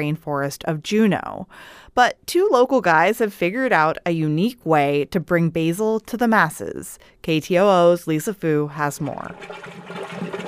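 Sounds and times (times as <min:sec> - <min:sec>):
speech: 0:00.0 - 0:10.4
compost tea brewing in oxygenated water: 0:08.8 - 0:10.4.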